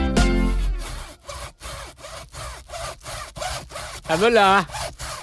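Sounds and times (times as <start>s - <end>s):
knife sawing through a pumpkin: 0.2s - 5.2s
speech: 4.1s - 4.8s.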